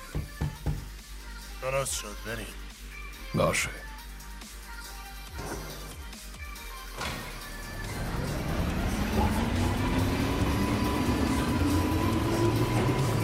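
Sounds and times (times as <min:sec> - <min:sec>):
speech: 0:01.6 - 0:02.6, 0:03.3 - 0:03.9
train rumbling on rails: 0:07.4 - 0:13.2
rising mechanical whine of train: 0:07.5 - 0:13.2.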